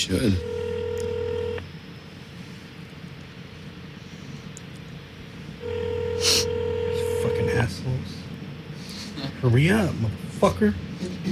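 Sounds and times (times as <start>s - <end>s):
speech: 0.0s - 0.5s, 9.4s - 10.9s
soft hiss of phone line noise: 0.0s - 11.3s
phone line ringback tones through a receiver: 0.3s - 1.6s, 5.6s - 7.5s.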